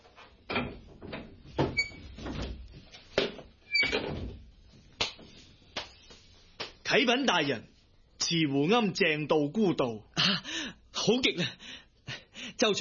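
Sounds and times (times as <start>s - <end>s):
wooden door creaking open: 0.5s - 2.6s, 3.7s - 4.4s
speech: 6.9s - 7.7s, 8.3s - 10.5s, 11.1s - 11.6s, 12.6s - 12.8s.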